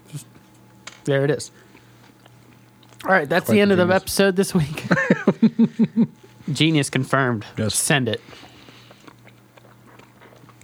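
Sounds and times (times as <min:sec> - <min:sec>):
speech: 0:01.0 - 0:01.7, 0:03.0 - 0:08.5
wet chewing and biting of food: 0:01.6 - 0:03.4, 0:08.2 - 0:10.6
laughter: 0:04.7 - 0:06.2.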